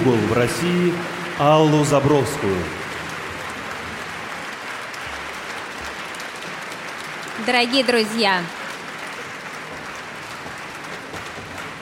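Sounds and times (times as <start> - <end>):
speech: 0.0 - 2.8, 7.4 - 8.6
audience applauding in a concert hall at a composers' competition final: 0.0 - 11.8.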